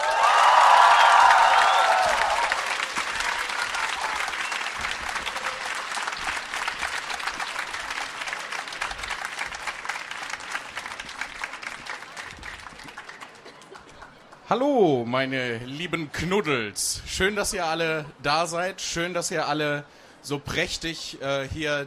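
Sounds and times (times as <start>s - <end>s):
large audience applauding and cheering in a big hall at a book event: 0.0s - 14.4s
speech: 14.5s - 21.8s.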